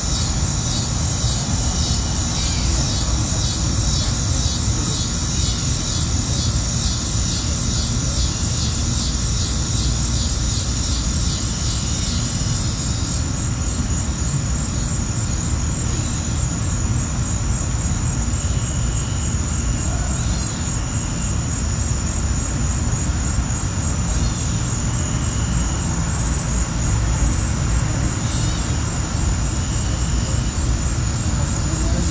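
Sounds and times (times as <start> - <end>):
insects humming in a small wooded yard: 0.0 - 32.0.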